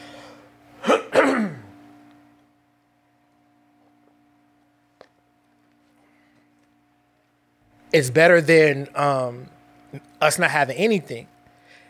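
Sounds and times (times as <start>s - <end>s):
person clearing throat: 0.8s - 1.8s
speech: 7.9s - 11.3s.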